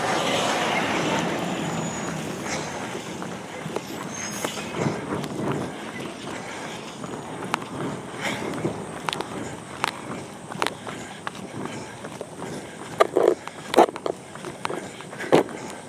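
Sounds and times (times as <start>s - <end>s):
concrete truck engine and road noise rumbling: 0.0s - 15.8s.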